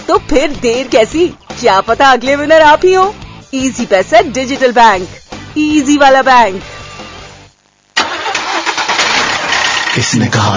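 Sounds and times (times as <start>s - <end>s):
speech: 0.1s - 6.7s, 10.0s - 10.5s
motorcycle or tractor engine starting: 8.0s - 10.3s.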